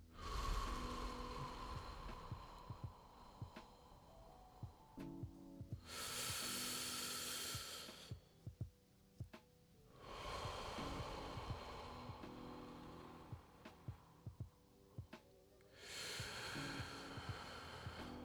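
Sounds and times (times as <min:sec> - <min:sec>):
slow deep breathing: 0:00.1 - 0:08.4, 0:09.9 - 0:18.2.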